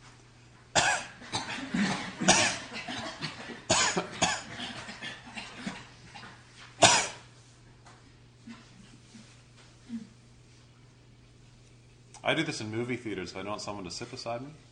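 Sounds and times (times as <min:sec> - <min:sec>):
faint steady hum: 0:00.0 - 0:14.7
person coughing forcefully as a breathing exercise: 0:00.8 - 0:05.9, 0:06.8 - 0:07.3
speech: 0:12.3 - 0:14.7.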